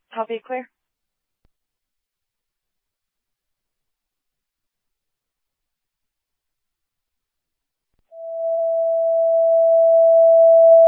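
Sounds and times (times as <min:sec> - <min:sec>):
speech: 0:00.2 - 0:00.8
dispatch radio paging tone paging an ambulance for a medical transfer: 0:08.2 - 0:10.8.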